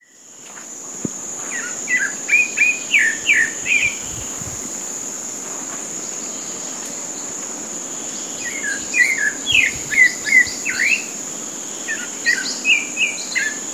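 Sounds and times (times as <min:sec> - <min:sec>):
Turdus leucomelas: 0:00.2 - 0:13.5.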